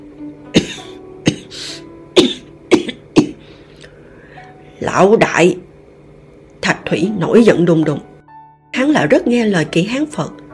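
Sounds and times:
man coughing: 0.5s - 1.6s, 2.2s - 3.4s
speech: 4.8s - 5.7s, 6.9s - 8.1s, 9.0s - 10.4s.

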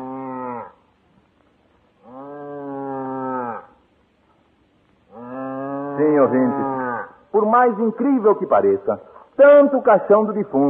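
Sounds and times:
ox lowing mournfully: 0.0s - 0.8s, 2.0s - 3.8s, 5.1s - 7.2s
speech: 6.0s - 10.6s.

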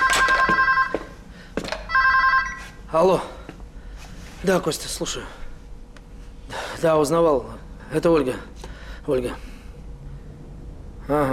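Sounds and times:
electronic telephone ringing in an office: 0.0s - 1.2s, 1.9s - 2.8s
speech: 2.9s - 3.4s, 4.4s - 5.4s, 6.8s - 9.5s, 11.1s - 11.3s.

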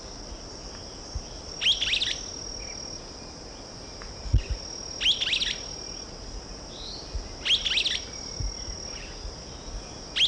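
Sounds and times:
Myiodynastes maculatus solitarius streaked flycatcher calling: 1.6s - 2.8s, 4.4s - 5.7s, 6.8s - 10.2s.

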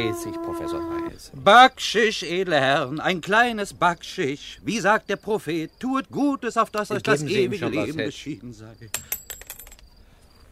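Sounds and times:
speech: 0.0s - 9.2s
dropped gold coin clinking on a hard surface: 8.9s - 9.9s.

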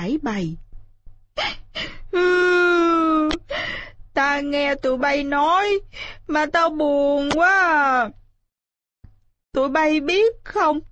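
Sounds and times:
speech: 0.0s - 0.7s, 4.2s - 8.2s, 9.5s - 10.8s
voice imitating a toad sobbing loudly: 1.4s - 3.4s.

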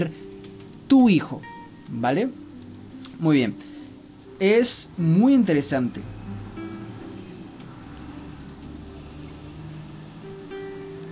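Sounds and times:
speech: 0.9s - 2.4s, 3.2s - 3.7s, 4.4s - 6.2s
bus engine rumble heard through a window: 5.8s - 11.1s.

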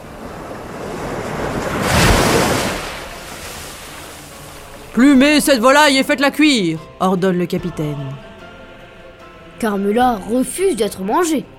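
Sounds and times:
huge ocean wave crashing against a wooden caravel under sail: 0.0s - 5.0s
wind: 0.0s - 5.0s
speech: 5.0s - 8.3s, 9.6s - 11.5s.

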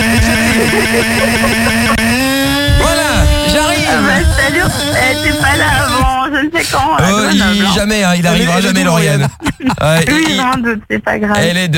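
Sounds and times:
laughter: 0.0s - 6.1s, 7.1s - 10.6s
scooter engine starting: 0.0s - 6.2s
speech: 0.8s - 2.0s, 4.5s - 11.7s.

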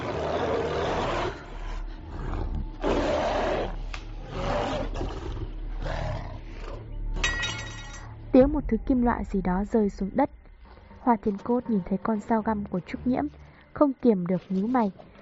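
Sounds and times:
wild beast roaring: 0.0s - 6.8s
speech: 8.4s - 10.4s, 11.0s - 15.1s.

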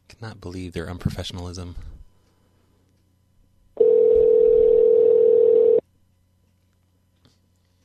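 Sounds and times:
speech: 0.2s - 1.9s
telephone dial tone while a call is being redialed: 3.8s - 5.8s.

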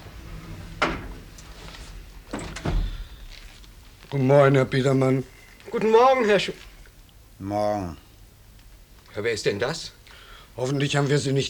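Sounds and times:
door being opened with clunks and rattles: 0.0s - 3.2s
faint hiss: 0.0s - 11.4s
speech: 4.1s - 6.7s, 7.4s - 8.0s, 9.2s - 10.0s, 10.6s - 11.4s.

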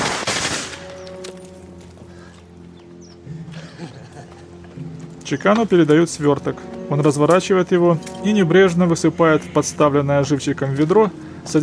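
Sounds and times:
submachine gun fired over people's heads: 0.0s - 0.9s
laughter: 3.2s - 4.9s
speech: 5.3s - 11.6s.

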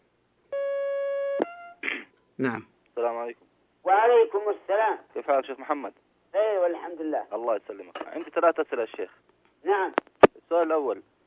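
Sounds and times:
telephone line tone on a call-in phone line: 0.6s - 1.8s
speech: 2.4s - 11.1s.

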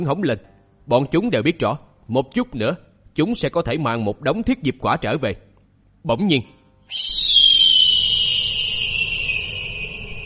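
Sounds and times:
speech: 0.0s - 7.3s
giant bird screeching: 6.9s - 10.2s.

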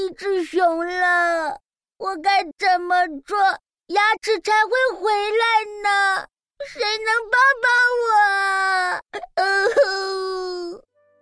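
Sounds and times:
speech: 0.1s - 10.8s
person voicing a bear sobbing and wailing: 6.6s - 7.1s, 8.4s - 10.8s.

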